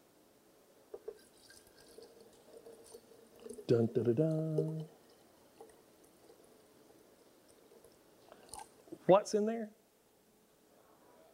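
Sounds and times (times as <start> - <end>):
water poured from a pitcher: 1.0 - 9.0
speech: 3.7 - 5.0, 9.1 - 9.8.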